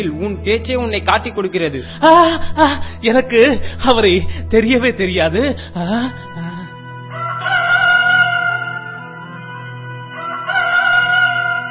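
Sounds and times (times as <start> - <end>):
speech: 0.0 - 6.6
rooster crowing: 7.1 - 9.2, 10.1 - 11.7.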